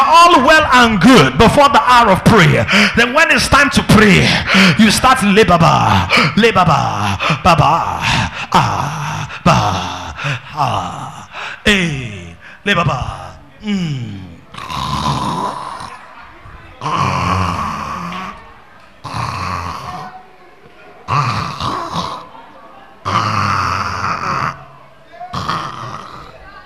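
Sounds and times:
speech: 0:00.2 - 0:12.0, 0:12.7 - 0:15.7, 0:16.8 - 0:17.4
man imitating snoring with his voice: 0:05.9 - 0:12.3, 0:13.0 - 0:16.0, 0:16.8 - 0:18.4, 0:19.0 - 0:20.2, 0:21.1 - 0:22.3, 0:23.0 - 0:24.6, 0:25.3 - 0:26.4.

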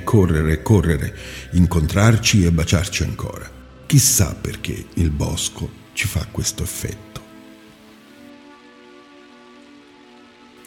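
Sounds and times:
speech: 0:00.1 - 0:07.2
steady rain falling on a surface: 0:05.3 - 0:10.6.

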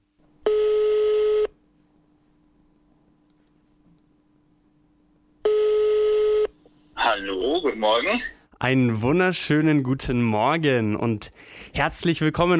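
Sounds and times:
faint steady hum: 0:00.0 - 0:12.5
telephone call connecting with buzzy ringing tones: 0:00.4 - 0:01.6, 0:05.4 - 0:06.5
speech: 0:07.2 - 0:12.5.

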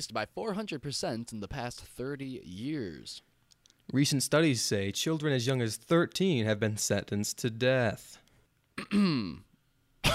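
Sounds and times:
speech: 0:00.0 - 0:03.3, 0:03.9 - 0:08.2, 0:08.8 - 0:09.5
throat clearing: 0:08.8 - 0:10.1.

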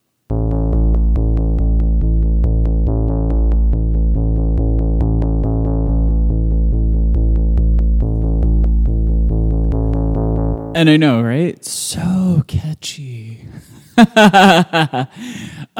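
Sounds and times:
keyboard synth holding a loud steady low chord: 0:00.3 - 0:10.8
speech: 0:10.8 - 0:15.7
laughter: 0:13.9 - 0:15.7.

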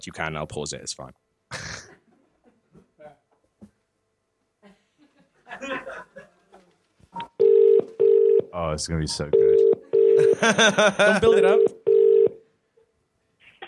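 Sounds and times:
speech: 0:00.0 - 0:01.2, 0:08.6 - 0:11.8
laughter: 0:04.6 - 0:06.7, 0:10.2 - 0:11.5
soft rustling: 0:06.4 - 0:08.0
loud steady electronic telephone tone: 0:07.4 - 0:08.5, 0:09.4 - 0:10.4, 0:11.5 - 0:12.4.

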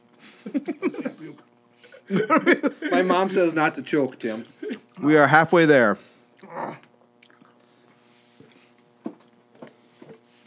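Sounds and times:
laughter: 0:00.3 - 0:04.9
speech: 0:02.1 - 0:06.8
quiet chewing of chicken nuggets: 0:06.2 - 0:08.6.

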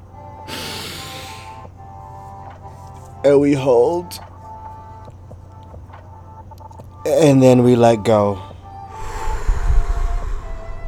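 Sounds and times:
faint steady hum: 0:00.0 - 0:10.8
deep breath drawn in through the nose during a guided breathing exercise: 0:00.4 - 0:01.8, 0:08.4 - 0:10.8
speech: 0:03.2 - 0:04.3, 0:07.1 - 0:08.5.

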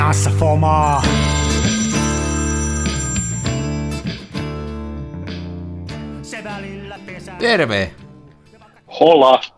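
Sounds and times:
speech: 0:00.2 - 0:01.4, 0:07.4 - 0:08.0, 0:09.0 - 0:09.5
phone ringing with bright metallic bell tone: 0:00.8 - 0:04.4.

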